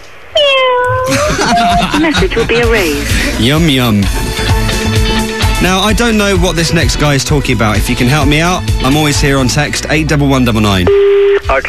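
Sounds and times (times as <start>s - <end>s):
caller on a phone message imitating a cat meowing: 0.4s - 1.1s
short steady squeaky tone: 0.4s - 1.8s
laughter: 1.0s - 3.4s
speech: 1.1s - 4.6s, 5.6s - 11.6s
breathy rush: 2.8s - 3.5s.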